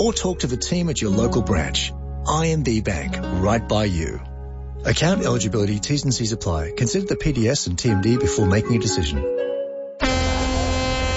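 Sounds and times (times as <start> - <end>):
speech: 0.0 - 9.4
deep cruise ship horn blast: 10.0 - 11.1.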